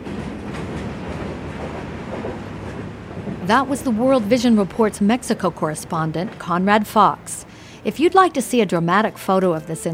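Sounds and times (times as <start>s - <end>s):
freight train passing fast on the tracks: 0.0s - 9.9s
speech: 3.5s - 9.9s.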